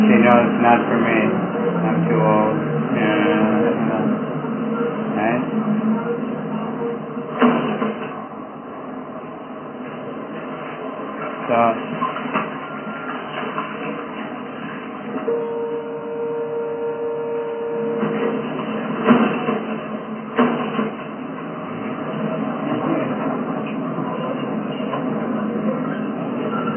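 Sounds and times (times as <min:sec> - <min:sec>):
subway train sustained tonal whine: 0:00.0 - 0:07.5, 0:15.2 - 0:19.1
subway train rumbling: 0:00.0 - 0:26.7
speech: 0:00.3 - 0:06.4, 0:11.5 - 0:11.9.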